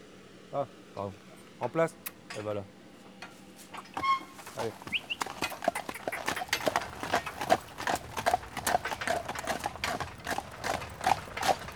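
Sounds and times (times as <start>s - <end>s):
speech: 0.5s - 2.8s, 4.6s - 5.0s
ridden horse trotting, hooves clip-clopping: 3.2s - 11.7s.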